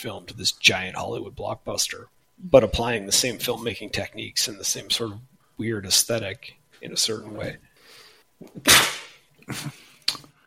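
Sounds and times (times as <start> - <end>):
speech: 0.0 - 10.2
sharp intake of breath: 7.8 - 8.3
person sneezing: 8.6 - 9.9.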